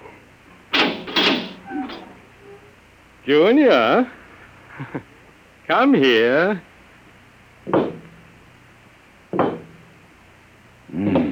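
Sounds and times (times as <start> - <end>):
door opening with a creak: 0.8 - 2.7
speech: 3.3 - 4.2, 4.8 - 5.1, 5.7 - 6.7.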